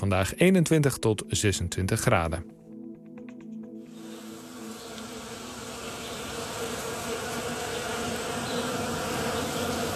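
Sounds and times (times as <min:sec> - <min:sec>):
speech: 0:00.0 - 0:02.6
bees buzzing in Dutch nature: 0:03.0 - 0:09.9.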